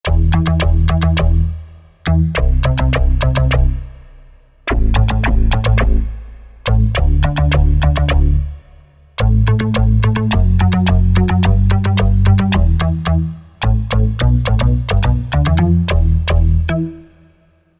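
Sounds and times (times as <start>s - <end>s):
Moog synth factory preset: 0.0s - 17.7s.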